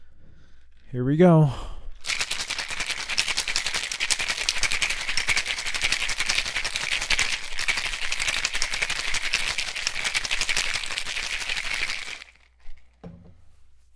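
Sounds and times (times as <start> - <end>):
speech: 0.9 - 1.7
ice rattling in a cocktail shaker as a drink is made: 2.0 - 13.0.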